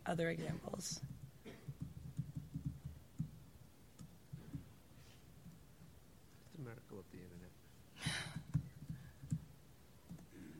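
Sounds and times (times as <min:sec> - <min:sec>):
low hum: 0:00.0 - 0:10.5
speech: 0:00.1 - 0:01.1, 0:06.6 - 0:08.3
computer keyboard keys tapping: 0:01.0 - 0:04.7, 0:08.3 - 0:10.3.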